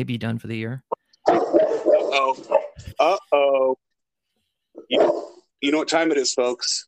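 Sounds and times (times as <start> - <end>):
speech: 0.0 - 3.8, 4.8 - 6.8
dog barking at people walking down the street: 1.2 - 2.8, 4.8 - 5.4.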